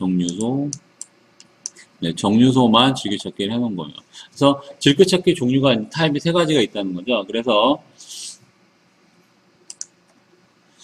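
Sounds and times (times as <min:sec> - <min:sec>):
speech: 0:00.0 - 0:00.8, 0:02.0 - 0:08.3
faint steady hum: 0:00.0 - 0:10.8
computer mouse clicking: 0:09.7 - 0:10.0.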